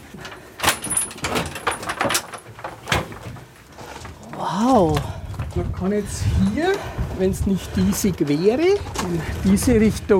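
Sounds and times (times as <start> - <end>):
rattling metallic handling noises of a door: 0.0 - 4.2
castle door pushed open with sharp clacks in Franconia, Germany: 0.6 - 3.4
speech: 4.6 - 5.1, 5.8 - 10.1.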